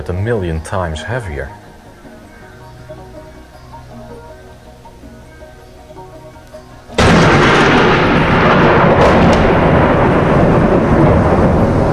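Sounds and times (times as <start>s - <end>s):
speech: 0.0s - 1.6s
thunder from lightning striking a grass field by the Maas river in a heavy storm: 7.0s - 11.9s.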